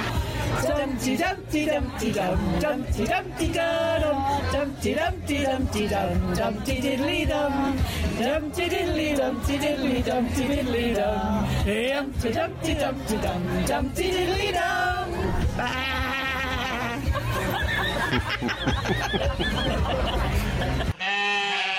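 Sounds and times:
overlapping chatter: 0:00.0 - 0:21.7
speech: 0:00.9 - 0:15.0, 0:18.1 - 0:20.9
people imitating sheep bleating: 0:15.6 - 0:17.2, 0:20.9 - 0:21.7
snickering laughter: 0:15.6 - 0:21.2.

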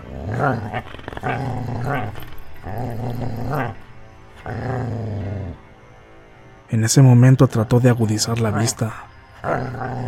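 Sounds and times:
dog growling: 0:00.0 - 0:05.6, 0:09.4 - 0:10.0
speech: 0:00.4 - 0:02.0, 0:06.7 - 0:09.8.

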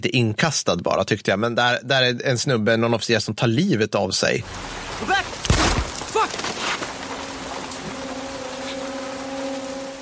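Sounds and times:
speech: 0:00.0 - 0:05.4
steady rain in a film scene: 0:04.4 - 0:10.0
low constant mechanical hum: 0:06.9 - 0:10.0.

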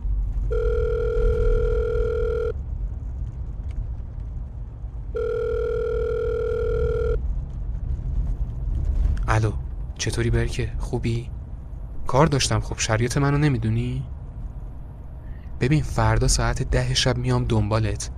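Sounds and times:
low steady rumble of noise: 0:00.0 - 0:18.1
long electronic phone ringback tones: 0:00.5 - 0:02.6, 0:05.2 - 0:07.2
speech: 0:09.4 - 0:11.4, 0:12.1 - 0:14.2, 0:15.6 - 0:18.1.

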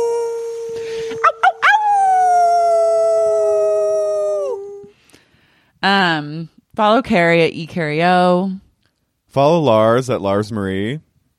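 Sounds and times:
wolf yipping and howling: 0:00.4 - 0:04.9
speech: 0:05.8 - 0:08.6, 0:09.3 - 0:11.0.

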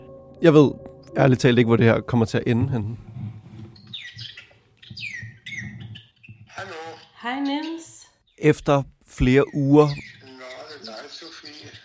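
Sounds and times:
speech: 0:00.4 - 0:03.1, 0:08.4 - 0:10.1
small pet birds chirping and tweeting: 0:03.7 - 0:08.6, 0:09.2 - 0:11.8.

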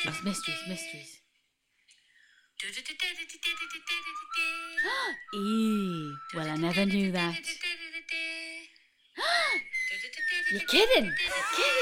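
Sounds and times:
speech: 0:00.0 - 0:01.2, 0:02.6 - 0:08.5, 0:09.2 - 0:11.8
person whistling: 0:03.7 - 0:06.6, 0:09.3 - 0:11.8.

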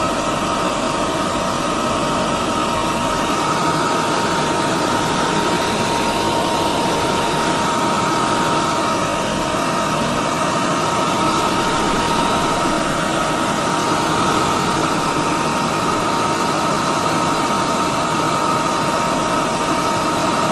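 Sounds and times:
hand dryer blowing: 0:00.0 - 0:20.5.

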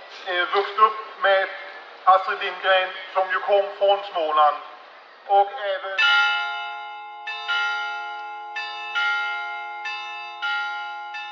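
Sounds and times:
speech: 0:00.2 - 0:06.2
church bells ringing over a town square: 0:06.0 - 0:11.2.

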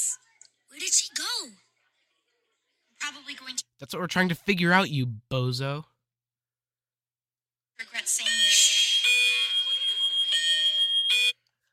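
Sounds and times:
speech: 0:03.8 - 0:05.9
loud harsh electronic school alarm blaring: 0:08.1 - 0:11.5.

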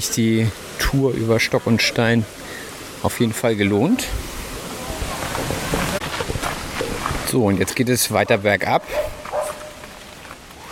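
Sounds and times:
speech: 0:00.0 - 0:04.4, 0:07.3 - 0:09.2
steady outdoor noise on a mountain hiking trail: 0:00.0 - 0:10.7
small dachshund barking aggressively on a downhill mountain hiking trail: 0:08.8 - 0:09.8.

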